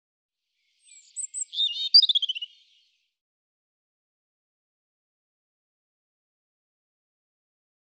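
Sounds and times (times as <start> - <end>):
European robin singing: 0.7 - 3.0.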